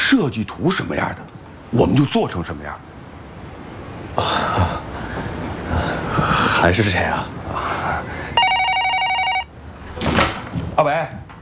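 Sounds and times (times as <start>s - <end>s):
hiss: 0.0s - 11.4s
speech: 0.1s - 2.9s, 4.2s - 4.8s, 5.7s - 8.1s, 10.8s - 11.2s
electronic telephone ringing: 8.4s - 9.5s.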